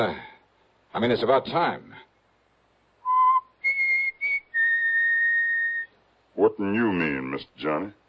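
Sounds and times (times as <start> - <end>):
speech: 0.0 - 0.3, 0.9 - 2.0, 6.4 - 8.0
person whistling a short clear tune: 3.1 - 5.9.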